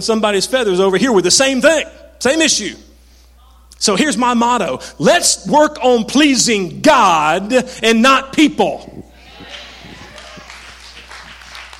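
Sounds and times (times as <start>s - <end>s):
speech: 0.0s - 2.9s, 3.8s - 9.0s
single person clapping hands: 10.0s - 11.7s.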